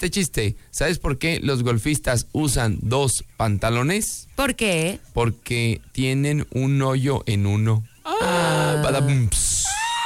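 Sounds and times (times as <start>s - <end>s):
speech: 0.0s - 9.8s
woman screaming: 8.1s - 10.0s.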